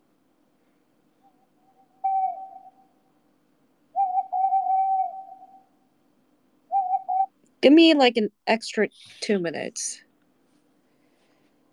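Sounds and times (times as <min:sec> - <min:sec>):
bird calling with hooting whistle-like notes: 0:01.2 - 0:03.0, 0:03.9 - 0:05.8, 0:06.7 - 0:07.3
speech: 0:07.6 - 0:10.0.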